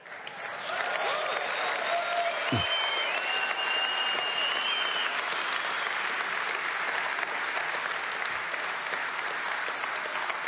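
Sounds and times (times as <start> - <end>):
audience applause: 0.0 - 10.4
audience cheering and whooping: 0.4 - 6.6.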